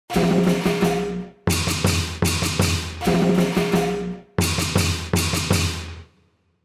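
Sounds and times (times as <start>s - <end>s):
chieng gong: 0.1s - 4.6s.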